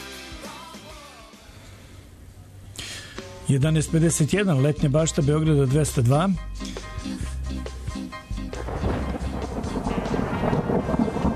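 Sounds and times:
speech: 3.5 - 6.7
low stepped musical tones: 3.5 - 11.3
thunder rumble: 8.5 - 11.3.

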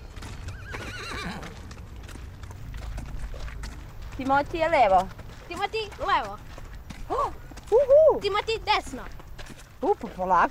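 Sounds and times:
small horse hooves clip-clopping while ridden: 0.0 - 10.4
small horse wavering whinny: 0.4 - 1.6
speech: 4.2 - 6.5, 7.1 - 9.2, 9.8 - 10.4.

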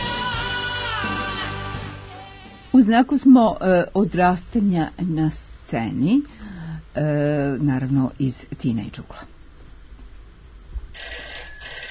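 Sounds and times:
low noise: 0.0 - 11.8
speech: 2.8 - 6.4, 7.0 - 9.3
telephone ringing with an electronic ring tone for an incoming call: 11.0 - 11.8.

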